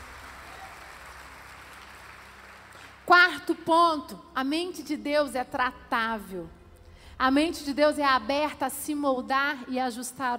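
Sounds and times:
crowd applauding: 0:00.0 - 0:03.1
speech: 0:03.1 - 0:06.6, 0:07.2 - 0:10.3.

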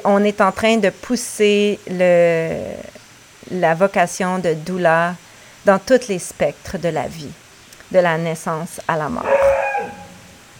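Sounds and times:
speech: 0:00.0 - 0:09.5
neighbor's dog barking and howling: 0:09.2 - 0:10.4.

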